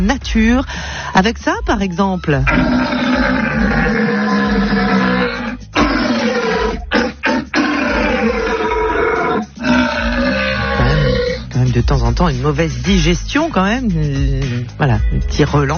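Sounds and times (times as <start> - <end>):
speech: 0.0 - 3.8, 11.9 - 15.7
red deer stag bellowing during the rut: 2.5 - 11.5.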